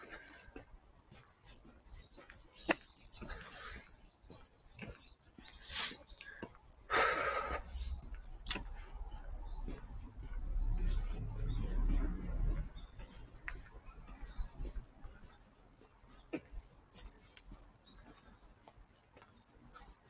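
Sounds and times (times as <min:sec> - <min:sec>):
rustling, crackling footsteps in woodland: 0:00.0 - 0:20.0
bird chirping outdoors in a quiet woodland: 0:01.5 - 0:06.6, 0:07.4 - 0:16.3
low steady rumble: 0:07.6 - 0:14.4.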